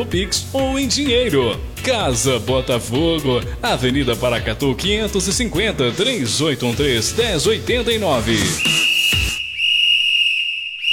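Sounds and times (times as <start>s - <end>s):
speech: 0.0s - 8.8s
referee's whistle long shrill blast: 8.3s - 10.9s.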